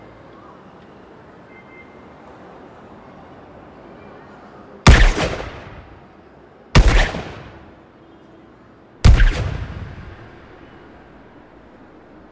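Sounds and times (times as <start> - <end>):
loud gunshots: 4.9 - 6.0, 6.8 - 7.8, 9.0 - 10.8.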